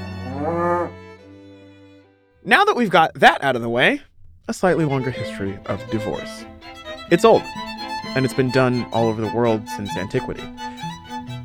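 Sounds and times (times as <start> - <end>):
cow mooing: 0.0 - 1.1
speech: 0.4 - 0.7, 2.5 - 10.6.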